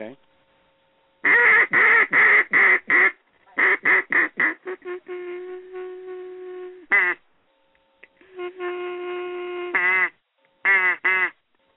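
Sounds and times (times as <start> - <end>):
duck call blown with raspy quacks and mournful notes: 1.2 - 7.2, 8.2 - 11.4.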